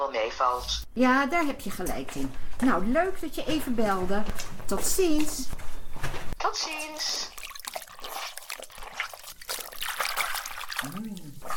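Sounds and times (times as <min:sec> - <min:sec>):
speech: 0:00.1 - 0:07.4
water trickling and splashing in a bath: 0:06.7 - 0:11.5.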